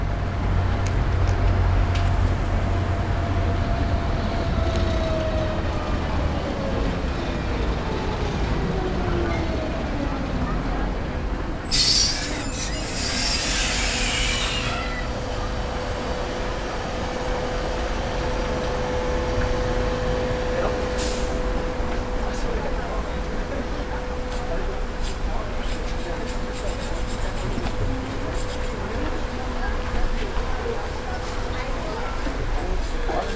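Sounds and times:
yellow mountain tram rumbling on rails over a bridge: 0.0s - 33.2s
shrill tram wheel squeal: 11.7s - 15.3s.

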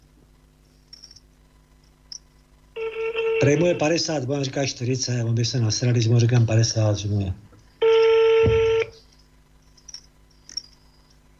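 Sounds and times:
phone ringback tone: 2.8s - 3.9s, 7.8s - 9.0s
speech: 3.4s - 7.4s.

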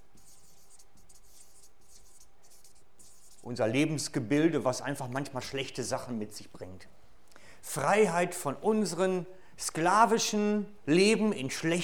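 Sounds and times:
handwriting as words are written down: 0.0s - 3.5s
speech: 3.4s - 7.0s, 7.7s - 11.8s.

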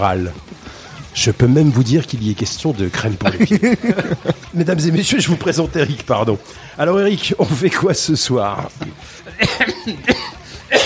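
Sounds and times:
speech: 0.0s - 0.5s, 1.2s - 10.4s
laughter: 2.8s - 10.8s
rough throaty vocal sounds: 8.8s - 10.8s
harsh coughing: 9.2s - 10.8s.

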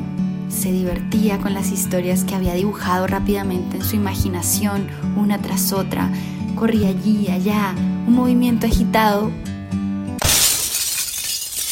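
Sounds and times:
speech: 0.6s - 9.5s
ceramic vase falling and shattering: 10.2s - 11.7s
vase fragments clattering and scattering: 10.2s - 11.7s.

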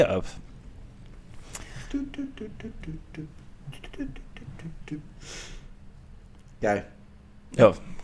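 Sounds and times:
speech: 0.0s - 0.5s, 1.9s - 5.6s, 6.6s - 8.0s
clicky mouth sounds: 1.4s - 5.1s
voice humming the melody of a 2014 electronic track: 1.6s - 5.3s.

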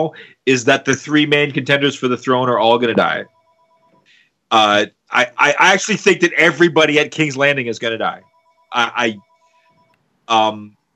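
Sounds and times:
speech: 0.0s - 3.4s, 4.5s - 9.3s, 10.3s - 10.8s
landline house phone ringing with electronic bursts: 2.9s - 4.1s, 8.0s - 10.0s.

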